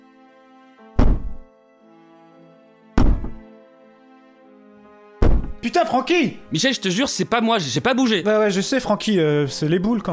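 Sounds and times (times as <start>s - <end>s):
heavy dull knocks: 1.0s - 1.5s, 3.0s - 3.4s, 5.2s - 5.6s
speech: 5.6s - 10.1s.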